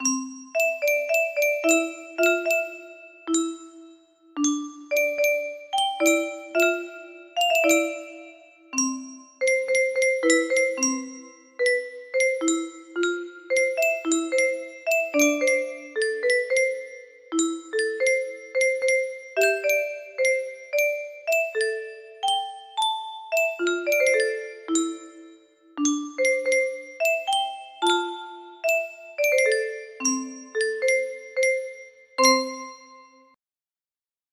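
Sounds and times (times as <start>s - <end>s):
music box melody in the key of C: 0.0s - 33.4s.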